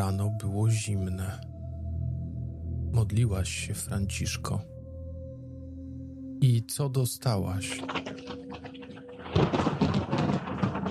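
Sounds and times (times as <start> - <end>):
speech: 0.0 - 1.5, 2.9 - 4.7, 6.4 - 8.3
heavy rain: 7.8 - 10.9
thunder crash: 7.8 - 10.9.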